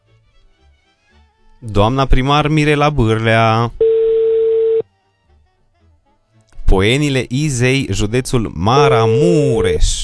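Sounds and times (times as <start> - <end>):
speech: 1.6 - 3.8, 6.7 - 10.0
telephone ringing tone on an outgoing call: 3.8 - 4.8.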